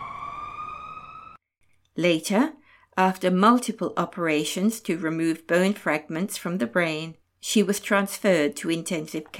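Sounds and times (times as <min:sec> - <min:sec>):
ambulance siren: 0:00.0 - 0:01.4
speech: 0:02.0 - 0:09.3.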